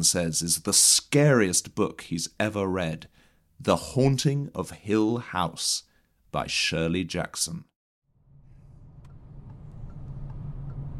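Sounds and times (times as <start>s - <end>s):
speech: 0.0s - 7.7s
car engine drone heard from inside the cabin: 8.1s - 10.9s.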